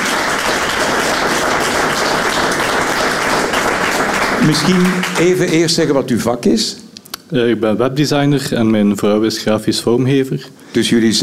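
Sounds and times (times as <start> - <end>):
audience applause: 0.0 - 5.8
speech: 4.5 - 11.2.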